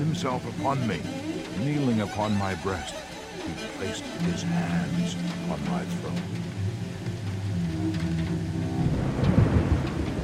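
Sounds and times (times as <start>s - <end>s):
steady rain: 0.0s - 10.2s
speech: 0.1s - 6.5s
deep rolling thunder: 8.2s - 10.2s.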